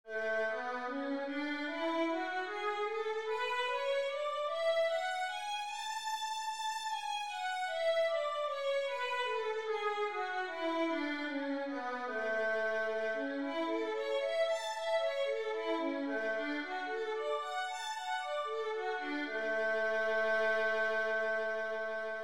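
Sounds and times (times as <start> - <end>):
violin playing two-octave A major scales: 0.2 - 22.2.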